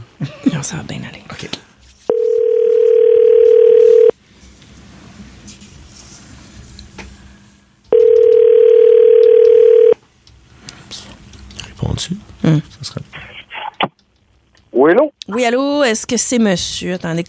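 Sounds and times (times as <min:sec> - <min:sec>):
speech: 0:00.2 - 0:01.7, 0:12.0 - 0:12.7, 0:14.8 - 0:17.2
telephone line tone while a call is placed: 0:02.1 - 0:04.1, 0:07.9 - 0:10.0.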